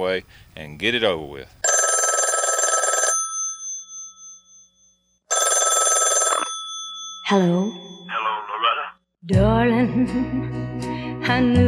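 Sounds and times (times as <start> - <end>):
speech: 0.0 - 1.6, 7.3 - 11.6
old-style telephone bell ringing loudly: 1.6 - 8.9.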